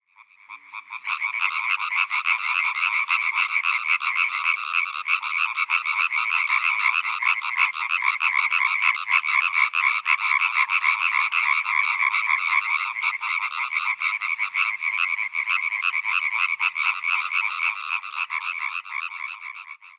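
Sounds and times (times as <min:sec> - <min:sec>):
European tree frog Hyla arborea calling: 0:00.1 - 0:19.9.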